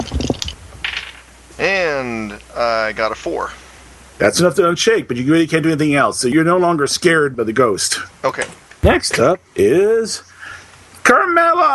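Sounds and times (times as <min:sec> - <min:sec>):
dice clattering on a table: 0:00.0 - 0:01.3
speech: 0:01.6 - 0:03.6, 0:04.2 - 0:10.3, 0:11.1 - 0:11.7.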